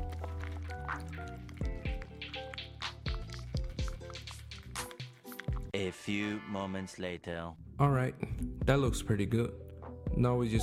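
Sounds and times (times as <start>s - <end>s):
stirring of homemade toothpaste mixture with coconut oil in a bowl: 0.0s - 5.8s
music: 0.0s - 10.6s
speech: 5.8s - 10.6s.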